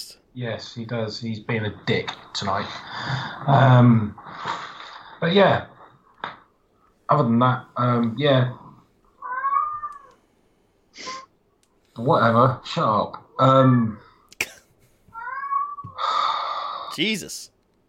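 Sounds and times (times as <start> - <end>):
speech: 0.4 - 4.6, 5.2 - 5.7, 7.1 - 8.6, 12.0 - 14.0, 17.0 - 17.5
pet cat meowing in the house: 9.2 - 10.2, 15.1 - 16.0.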